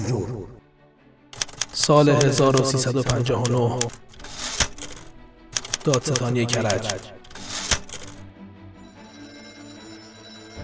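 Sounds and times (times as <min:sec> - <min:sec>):
old-style telephone bell ringing: 0:01.4 - 0:08.3
speech: 0:01.8 - 0:04.2, 0:05.8 - 0:07.2.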